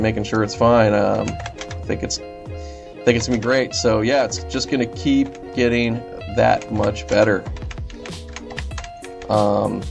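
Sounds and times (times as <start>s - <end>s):
speech: 0.0s - 2.3s, 3.0s - 7.6s, 9.3s - 9.8s
computer keyboard clicks: 1.1s - 1.9s, 3.2s - 3.6s, 5.2s - 5.5s, 6.5s - 9.4s.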